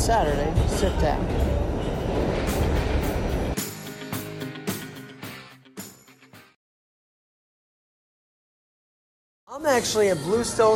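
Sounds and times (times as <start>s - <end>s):
subway train rumbling heard from inside the car: 0.0s - 3.6s
speech: 0.1s - 1.6s, 9.6s - 10.7s.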